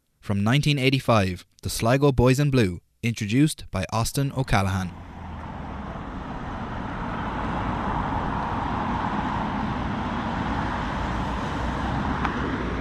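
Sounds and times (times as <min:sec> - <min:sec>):
speech: 0:00.3 - 0:05.1
dense road traffic of cars and heavier vehicles at a busy roundabout: 0:04.6 - 0:12.8.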